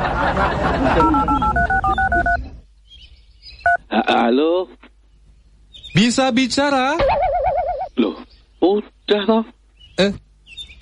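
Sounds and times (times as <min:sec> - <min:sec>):
laughter: 0:00.0 - 0:02.3
speech: 0:00.4 - 0:01.5, 0:04.3 - 0:04.8, 0:06.0 - 0:07.3, 0:08.0 - 0:10.2
touch-tone keypad beeps dialing a number on a mobile phone: 0:01.0 - 0:02.5.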